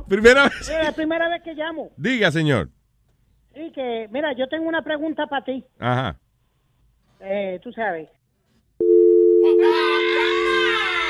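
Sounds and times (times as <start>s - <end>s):
speech: 0.1s - 2.8s, 3.6s - 6.2s, 7.2s - 8.2s
telephone dial tone after a call is cut off: 8.8s - 9.6s
loud voice crying out: 9.5s - 11.0s.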